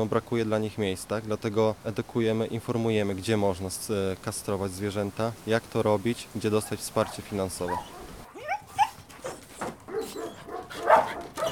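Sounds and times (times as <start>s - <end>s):
speech: 0.0s - 8.0s
several dogs barking at an animal shelter: 6.6s - 11.5s.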